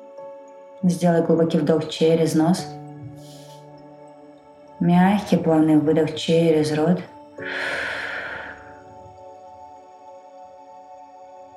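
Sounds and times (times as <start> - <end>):
soft sustained tones: 0.0 - 11.5
speech: 0.8 - 2.8, 4.8 - 7.8.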